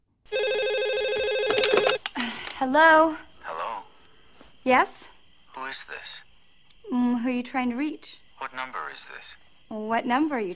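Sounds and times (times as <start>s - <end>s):
telephone ringing with electronic trill in a wealthy house at night: 0.3s - 2.0s
speech: 2.6s - 3.3s, 4.6s - 6.3s, 6.9s - 10.5s.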